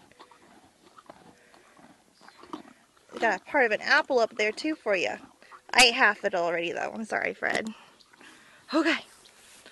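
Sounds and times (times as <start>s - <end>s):
animal crunching on a carrot: 0.0s - 5.9s
speech: 3.2s - 7.8s, 8.7s - 9.1s.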